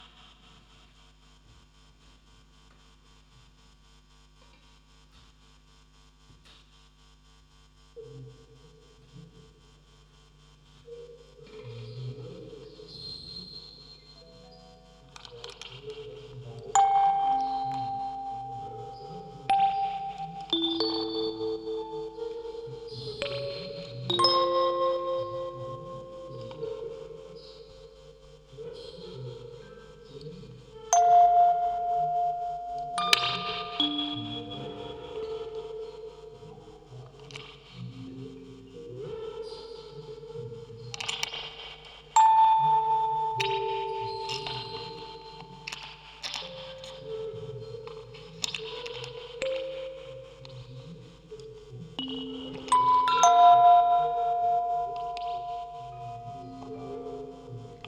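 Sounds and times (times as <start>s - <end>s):
field recording ambience: 4.4s - 10.0s, 10.6s - 57.8s
vocoder voice: 8.0s - 9.5s, 10.9s - 57.8s
music box quartet: 16.6s - 27.3s, 30.9s - 35.8s, 42.2s - 50.0s, 52.0s - 57.8s.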